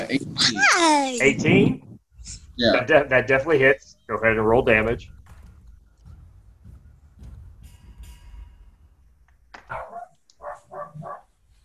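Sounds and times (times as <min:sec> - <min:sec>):
speech: 0:00.1 - 0:01.8, 0:02.6 - 0:05.2
dog barking: 0:09.6 - 0:11.3.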